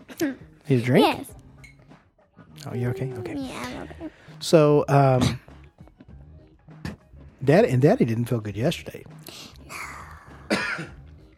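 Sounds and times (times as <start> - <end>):
speech: 0.2 - 1.4, 2.6 - 5.4, 7.4 - 9.5
child coughing: 5.1 - 5.4, 10.4 - 11.0.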